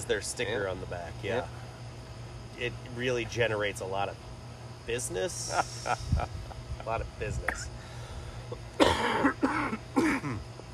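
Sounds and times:
speech: 0.0s - 1.7s, 2.6s - 7.9s
steady hum: 0.0s - 10.7s
harsh coughs: 8.8s - 10.4s.

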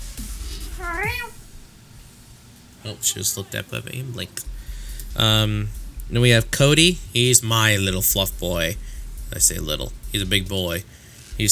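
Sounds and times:
faint steady hum: 0.2s - 11.5s
domestic cat meowing: 0.7s - 1.4s
speech: 2.8s - 4.6s, 5.2s - 11.5s.

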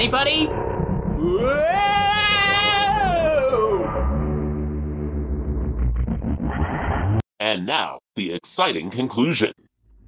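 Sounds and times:
speech: 0.0s - 2.1s, 7.4s - 9.6s
sci-fi dimensional warp effect with downward sweep and deep rumble: 0.0s - 7.2s.

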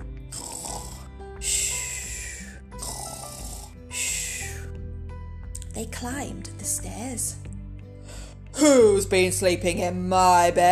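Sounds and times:
person imitating loud snoring: 0.3s - 4.7s
speech: 5.8s - 7.5s, 8.6s - 10.7s.

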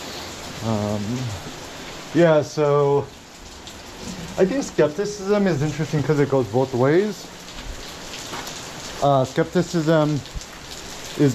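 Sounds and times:
heavy rain pouring: 0.0s - 11.3s
speech: 0.6s - 3.2s, 4.0s - 7.4s, 9.0s - 10.4s, 11.2s - 11.3s.

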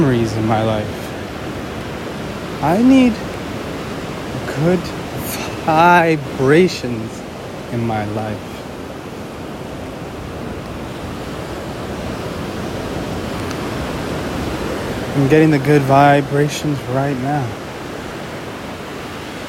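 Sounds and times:
speech: 0.0s - 1.1s, 2.6s - 3.3s, 4.5s - 5.0s, 5.6s - 8.5s, 15.2s - 17.6s
ocean waves washing ashore: 0.0s - 19.4s.

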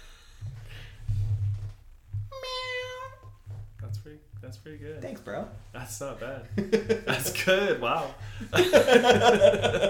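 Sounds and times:
person imitating a cat meow: 2.3s - 3.3s
speech: 4.5s - 9.8s
laughter: 6.5s - 7.6s, 8.4s - 9.8s.

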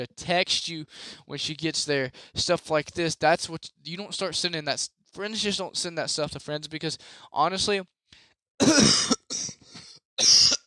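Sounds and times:
speech: 0.0s - 9.4s
person coughing into a microphone: 8.6s - 10.6s.

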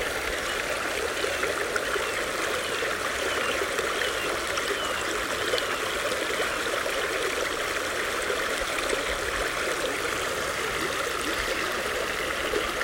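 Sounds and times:
stream water trickling and babbling over rocks in the woods: 0.0s - 12.8s.

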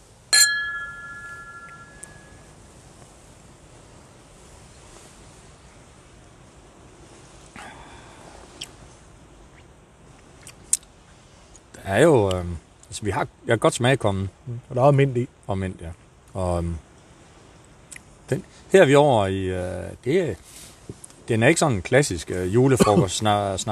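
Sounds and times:
soft chime: 0.3s - 2.6s
two glasses of snaps clinking in a toast: 0.4s - 2.5s
speech: 11.9s - 16.9s, 18.3s - 23.7s.

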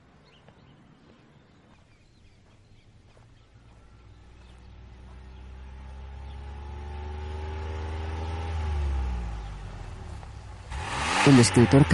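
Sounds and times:
car engine hum as car pulls up and slows: 3.2s - 11.9s
speech: 11.3s - 11.9s.

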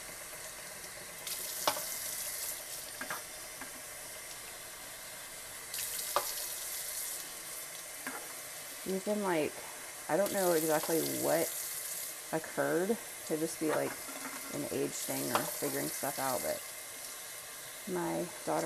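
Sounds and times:
tap water running into a sink while recycling is rinsed: 0.7s - 4.5s, 5.7s - 8.2s, 10.2s - 12.3s, 13.2s - 16.6s
speech: 8.8s - 11.6s, 12.3s - 16.7s, 17.9s - 18.6s.

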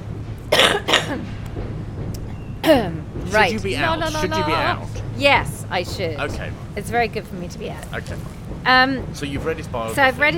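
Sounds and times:
harsh coughs: 0.5s - 1.2s
speech: 2.7s - 10.3s.

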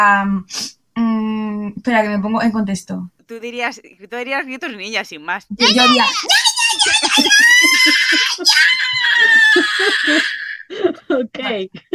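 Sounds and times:
speech: 0.0s - 1.1s, 1.7s - 6.4s, 7.1s - 11.9s
person yelling a long Mexican-style grito: 5.6s - 10.5s
laughter: 5.6s - 11.9s.

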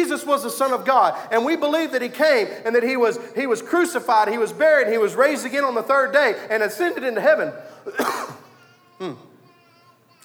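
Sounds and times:
speech: 0.0s - 8.4s, 9.0s - 9.3s
preacher clearing throat during a sermon: 7.9s - 9.4s
preacher coughing during a sermon: 7.9s - 9.4s.

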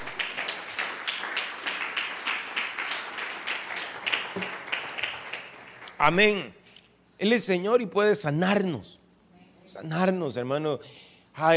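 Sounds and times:
crowd applauding during a prayer service: 0.0s - 6.2s
speech: 6.0s - 6.6s, 7.2s - 9.0s, 9.7s - 11.5s.

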